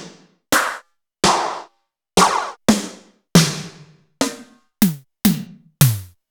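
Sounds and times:
Alesis D4 drum module snare drum hit: 0.5s - 2.6s, 4.8s - 6.2s.

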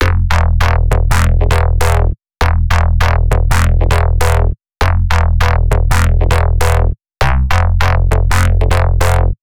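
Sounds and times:
Sytrus synthesizer bass: 0.0s - 9.4s.

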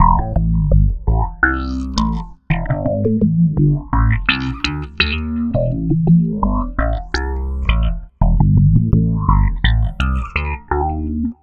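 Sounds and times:
processed slap bass on electric bass: 0.0s - 11.4s.

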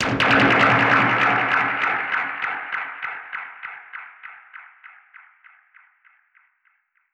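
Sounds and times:
dub percussion one-shot hits: 0.0s - 3.0s.

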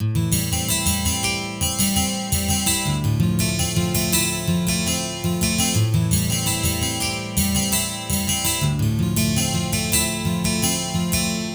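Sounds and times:
twelve-string guitar: 0.0s - 11.5s.

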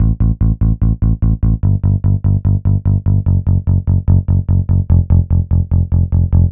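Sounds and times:
electric bass: 0.0s - 6.5s.

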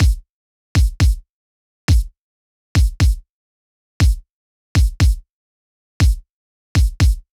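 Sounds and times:
kick drum: 0.0s - 1.2s, 1.9s - 2.2s, 2.8s - 3.2s, 4.0s - 4.2s, 4.8s - 5.2s, 6.0s - 6.2s, 6.8s - 7.3s.

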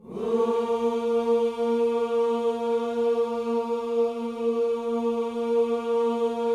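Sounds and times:
gospel vocal whoo: 0.0s - 6.5s.

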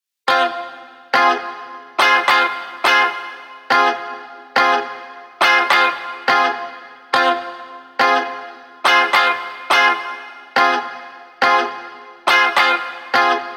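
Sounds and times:
140 BPM F minor offbeat dub guitars with effects: 0.3s - 13.5s.

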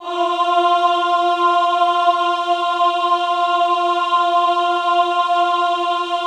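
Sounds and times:
extended classical choir singing ahh on F3: 0.0s - 6.2s.

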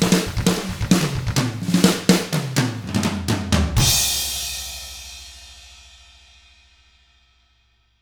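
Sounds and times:
rock drums: 0.0s - 5.1s.

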